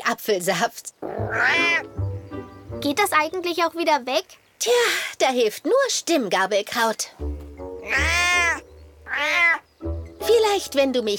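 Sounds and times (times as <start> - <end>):
speech: 0.1 - 2.0, 2.8 - 7.3, 7.9 - 9.6, 10.2 - 11.1
cat meowing: 1.2 - 1.9, 7.8 - 9.7.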